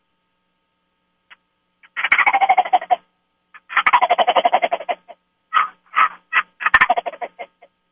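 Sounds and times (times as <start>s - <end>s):
turkey gobble call imitation: 2.0s - 3.0s, 3.6s - 7.7s.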